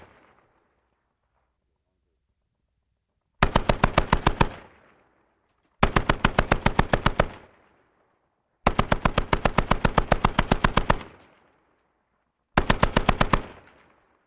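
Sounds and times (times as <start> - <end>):
.50 caliber machine gun long bursts: 3.4 - 4.7, 5.8 - 7.4, 8.7 - 11.1, 12.6 - 13.6.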